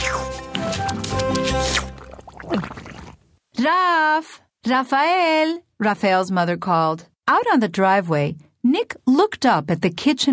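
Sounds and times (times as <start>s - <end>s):
wet squishy mashing and splashing of salsa: 0.0s - 3.3s
speech: 3.6s - 10.3s.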